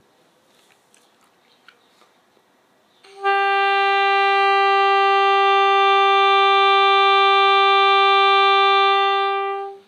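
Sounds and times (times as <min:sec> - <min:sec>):
long tone on a Legere reed instrument: 0:03.1 - 0:09.8.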